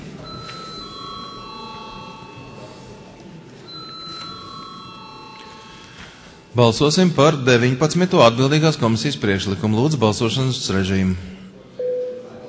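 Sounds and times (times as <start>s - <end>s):
murmur of room noise and voices in a parliamentary chamber: 0.0s - 12.4s
electronic chime bell ringing in a parliamentary chamber before a vote: 0.2s - 3.1s, 3.7s - 6.4s
speech: 6.6s - 11.4s.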